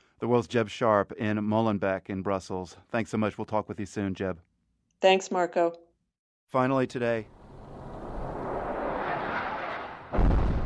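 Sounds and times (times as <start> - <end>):
speech: 0.2 - 5.9, 6.5 - 7.4
loud explosion boom in a war zone: 7.8 - 10.6
explosions in a war zone rumbling: 8.2 - 10.6.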